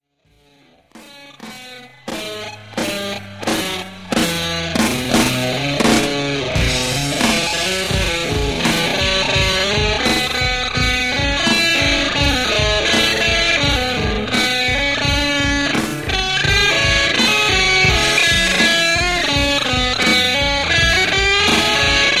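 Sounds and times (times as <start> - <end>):
slow guitar solo: 0.4 - 22.1.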